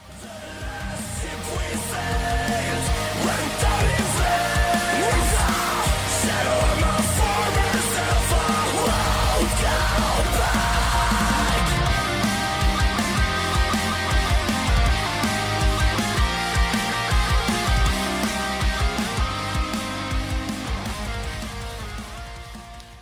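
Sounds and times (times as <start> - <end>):
harsh screamed vocals: 0.0 - 13.5
fast dense metal track with drums and distorted guitars: 0.0 - 22.9.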